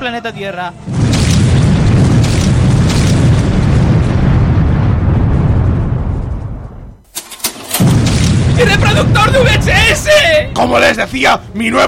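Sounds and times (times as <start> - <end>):
speech: 0.0 - 1.0, 8.6 - 11.8
massive explosion from a malfunctioning robot: 0.8 - 7.0, 7.8 - 11.0.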